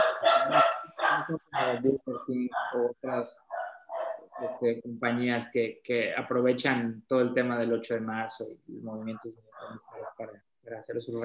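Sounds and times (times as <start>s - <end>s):
dogs barking: 0.0s - 4.7s, 9.1s - 10.4s
speech: 1.3s - 3.5s, 4.4s - 11.2s.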